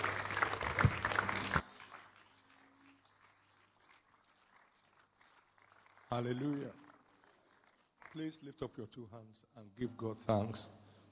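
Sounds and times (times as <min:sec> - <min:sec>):
people cheering: 0:00.0 - 0:02.0
audience clapping in praise: 0:00.0 - 0:09.1
speech: 0:06.1 - 0:06.8, 0:08.2 - 0:10.8.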